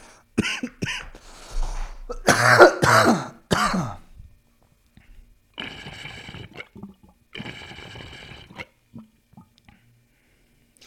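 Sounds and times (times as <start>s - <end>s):
person clearing throat: 0.4s - 1.2s, 2.1s - 4.1s
person coughing: 0.4s - 1.3s, 2.1s - 4.1s
water pipe holding a little water bubbling and sloshing: 5.6s - 9.9s.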